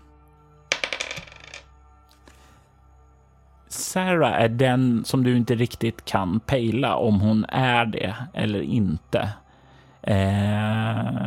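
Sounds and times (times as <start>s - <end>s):
die clattering across a hard surface: 0.7s - 1.7s
speech: 3.9s - 9.4s, 10.0s - 11.2s.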